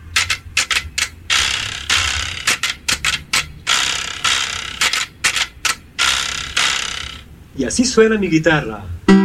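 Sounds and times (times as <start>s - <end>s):
carraca ratchet rattle percussion instrument clicking: 0.0s - 7.3s
speech: 7.6s - 9.1s.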